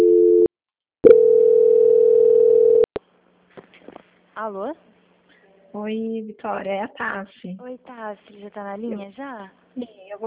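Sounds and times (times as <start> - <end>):
telephone call transfer tones: 0.0 - 2.9
speech: 4.4 - 4.9, 5.8 - 10.2.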